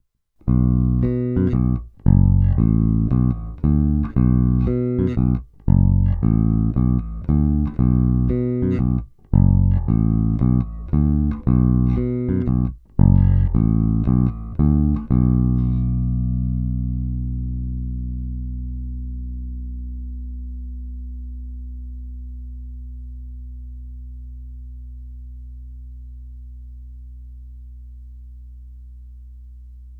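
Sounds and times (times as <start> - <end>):
Fender Blacktop Precision Bass electric bass guitar with both pickups: 0.4 - 29.9.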